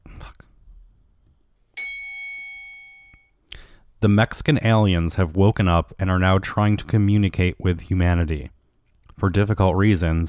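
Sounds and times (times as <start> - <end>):
single bright bell struck once: 1.8 - 3.3
speech: 4.0 - 8.6, 9.2 - 10.2.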